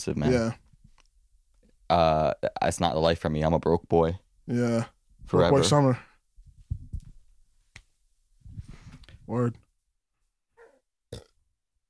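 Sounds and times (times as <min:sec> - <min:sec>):
speech: 0:00.0 - 0:00.6, 0:01.9 - 0:06.1, 0:09.3 - 0:09.6
small burp into the microphone: 0:10.6 - 0:11.4.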